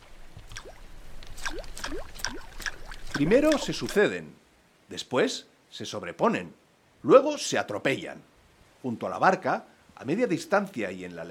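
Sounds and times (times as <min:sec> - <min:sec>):
light splashes and plops in still water: 0:00.2 - 0:04.1
speech: 0:03.2 - 0:11.2.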